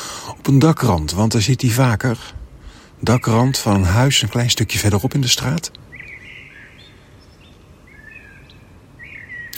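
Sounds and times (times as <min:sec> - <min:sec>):
speech: 0:00.3 - 0:02.4, 0:03.0 - 0:05.9
common blackbird singing: 0:03.0 - 0:09.5.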